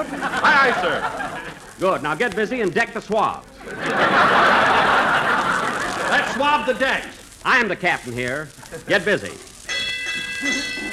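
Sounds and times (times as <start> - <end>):
laughter: 0.0 - 2.0, 3.6 - 7.1
speech: 0.0 - 4.5, 6.3 - 9.5, 10.2 - 10.9
ship's bell ringing: 9.7 - 10.9.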